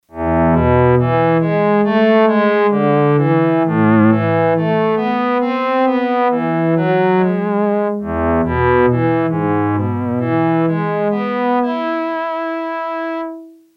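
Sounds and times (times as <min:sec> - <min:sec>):
electric cello synth note A: 0:00.1 - 0:13.7.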